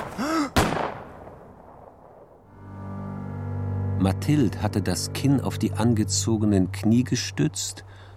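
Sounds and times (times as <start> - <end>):
loud sharp pistol shot: 0.0 - 1.4
low steady hum: 2.5 - 8.1
speech: 4.0 - 8.1.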